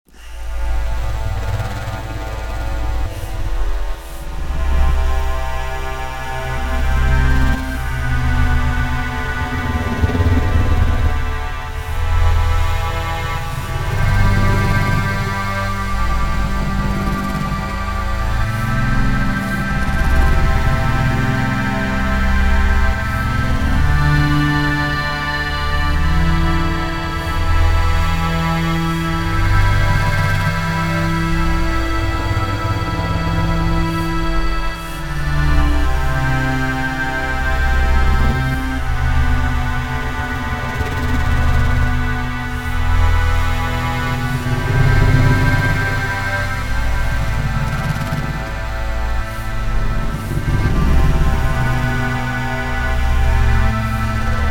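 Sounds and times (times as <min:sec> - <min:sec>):
steampunk Victorian steam synth Kontakt instrument: 0:00.1 - 0:54.4.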